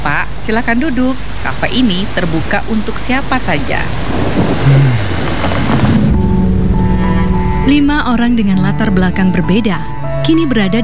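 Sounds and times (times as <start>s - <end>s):
deep rumble of thunder: 0.0s - 10.8s
heavy rain from a storm outside a café: 0.0s - 10.8s
speech: 0.5s - 5.0s, 7.6s - 10.8s
low sustained hum: 5.9s - 10.8s.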